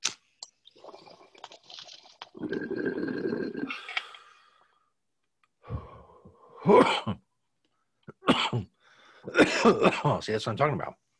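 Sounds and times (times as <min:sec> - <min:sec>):
long rough inhale through a crackling bubbling draw taking a smoke hit: 0:02.3 - 0:04.4
harsh coughs: 0:06.6 - 0:07.2, 0:08.2 - 0:08.7, 0:09.3 - 0:10.2
speech: 0:09.6 - 0:11.0.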